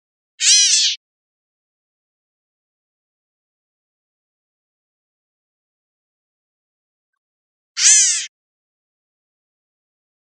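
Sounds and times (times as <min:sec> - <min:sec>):
bird giving a nasal mewing call in Costa Rica: 0:07.8 - 0:08.3.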